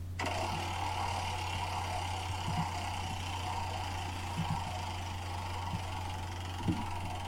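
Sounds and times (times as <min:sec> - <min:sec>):
prize wheel spinning: 0:00.2 - 0:07.2.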